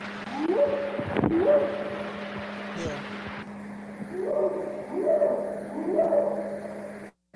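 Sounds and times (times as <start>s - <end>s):
steady low hum and hiss: 0.0s - 7.3s
rising hooting whoop calls from a purported Bigfoot recording in the Sierra Nevada: 0.3s - 2.1s, 4.0s - 7.0s.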